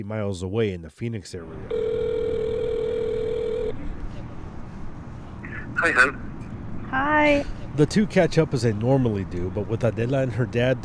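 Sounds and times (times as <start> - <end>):
speech: 0.0 - 2.0, 5.8 - 6.3, 6.9 - 10.8
electronic telephone ringing tone through the earpiece: 1.7 - 3.9.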